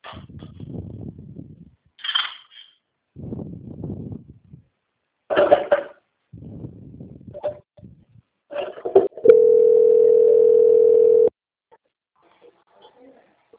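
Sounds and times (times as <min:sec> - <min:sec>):
steady telephone tone while a bank call is being transferred: 0:09.2 - 0:11.3.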